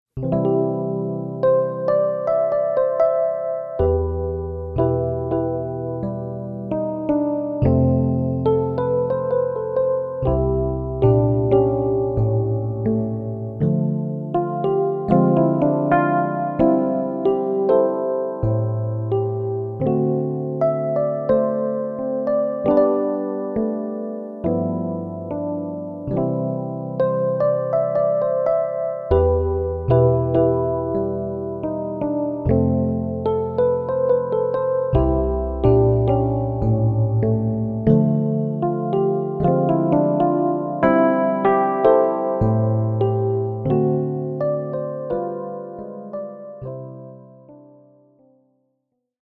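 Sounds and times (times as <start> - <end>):
electric piano: 0.1 - 48.6.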